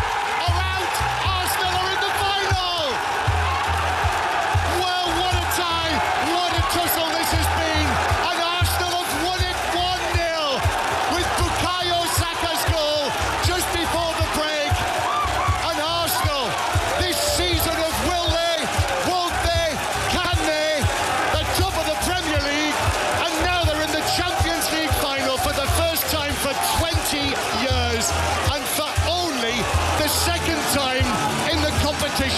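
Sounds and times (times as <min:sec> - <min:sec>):
excited voices of a football crowd: 0:00.0 - 0:32.3
huge football stadium crowd cheering and roaring at the final whistle in North London: 0:00.0 - 0:32.3.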